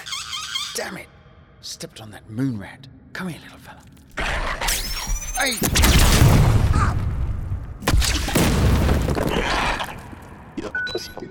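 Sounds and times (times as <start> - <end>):
speech: 0.8 - 4.3, 5.4 - 7.1, 10.6 - 11.2
sharp booming burst: 5.6 - 9.4
energy balls from blasters exploding on impact in a sci-fi video game: 5.6 - 10.2.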